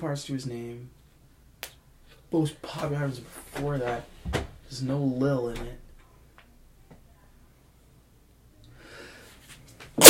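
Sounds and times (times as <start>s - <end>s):
speech: 0.0s - 1.0s, 2.3s - 5.8s
breathy hitching inhale before a sneeze: 8.8s - 9.4s.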